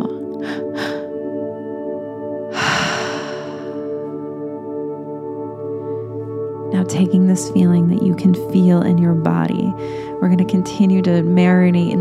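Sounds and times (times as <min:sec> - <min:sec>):
sustained soft musical drone: 0:00.0 - 0:12.0
breathy rushes of air from a guided breathwork exercise: 0:00.4 - 0:01.1, 0:02.5 - 0:04.0
speech: 0:06.7 - 0:12.0.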